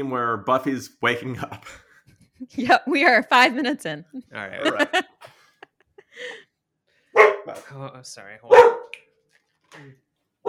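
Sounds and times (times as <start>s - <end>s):
speech: 0.0s - 5.1s, 7.5s - 8.8s, 9.7s - 10.0s
laughter: 4.4s - 6.4s
dog barking in short sharp bursts: 7.2s - 7.6s, 8.5s - 9.0s.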